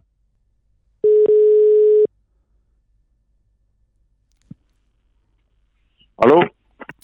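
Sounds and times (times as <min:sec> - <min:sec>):
telephone ringback tone on an outgoing phone line: 0:01.0 - 0:02.1.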